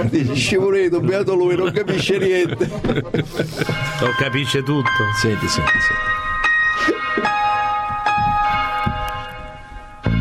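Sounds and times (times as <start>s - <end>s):
laughter: 0.0s - 4.4s
speech: 0.0s - 6.2s
church bell ringing: 3.8s - 10.1s.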